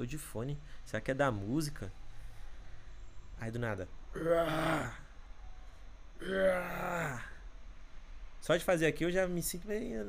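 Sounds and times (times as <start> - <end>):
speech: 0.0 - 2.0, 3.4 - 5.0, 6.2 - 7.3, 8.4 - 10.0
voice imitating loud shouting heard at a gym: 4.2 - 5.0, 6.2 - 7.4.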